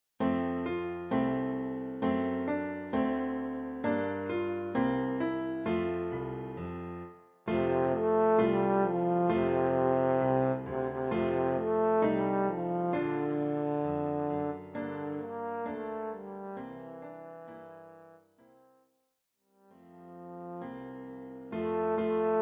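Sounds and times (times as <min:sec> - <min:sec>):
piano: 0:00.2 - 0:18.8, 0:19.7 - 0:22.4
trombone: 0:07.5 - 0:18.8, 0:19.8 - 0:22.4.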